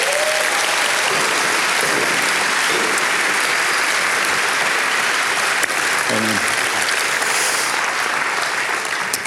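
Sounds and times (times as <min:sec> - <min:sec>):
faint cheers: 0:00.0 - 0:01.9
audience applause for a man invited onto a stage: 0:00.0 - 0:09.2.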